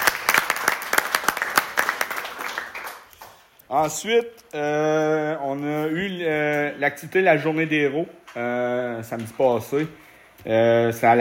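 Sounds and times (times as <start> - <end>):
crowd applause congratulating a young sports team and its coach: 0.0 - 3.3
speech: 3.7 - 11.1.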